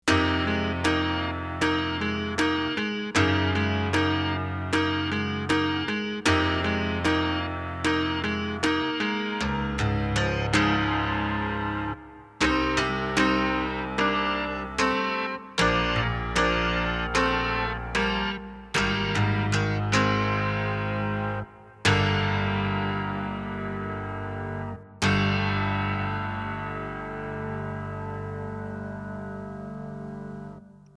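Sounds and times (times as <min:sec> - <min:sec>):
plucked piano: 0:00.1 - 0:30.9.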